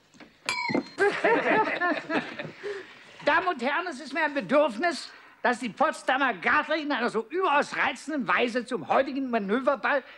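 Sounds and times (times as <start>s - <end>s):
clink on a glass: 0.5s - 1.0s
laughter: 1.0s - 3.0s
speech: 1.4s - 10.1s.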